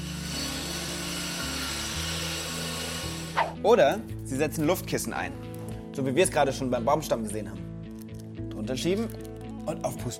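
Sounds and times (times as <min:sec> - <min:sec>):
diamond-reinforced chainsaw grinding through stone or concrete: 0:00.0 - 0:03.6
speech: 0:03.6 - 0:05.4, 0:06.0 - 0:07.6, 0:08.7 - 0:10.1.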